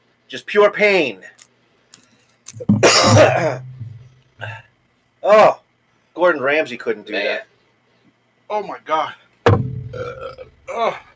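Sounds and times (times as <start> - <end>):
speech: 0.3 - 1.4, 2.5 - 3.7, 5.2 - 5.6, 6.2 - 7.5, 8.5 - 9.2, 9.9 - 11.1
loud gurgling belch: 2.6 - 4.0, 9.7 - 10.6.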